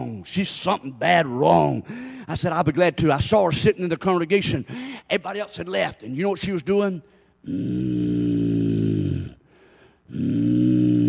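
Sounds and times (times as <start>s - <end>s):
speech: 0.0s - 8.2s, 10.1s - 10.8s
short breath: 1.8s - 2.3s, 4.7s - 5.1s, 7.1s - 7.4s, 9.3s - 10.2s
person imitating an animal's low-pitched growl: 7.4s - 9.4s, 10.1s - 11.0s.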